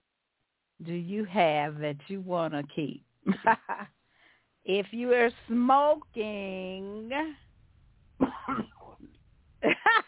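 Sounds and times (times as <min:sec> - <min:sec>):
speech: 0:00.8 - 0:04.0, 0:04.6 - 0:07.4, 0:08.2 - 0:08.8
person coughing: 0:08.2 - 0:09.0.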